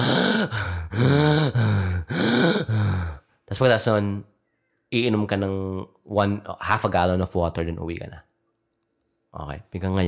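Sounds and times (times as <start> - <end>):
person imitating heavy exhausted panting after jiu-jitsu sparring: 0.0 - 3.2
speech: 0.4 - 1.7, 3.6 - 4.3, 4.9 - 8.3, 9.3 - 10.0.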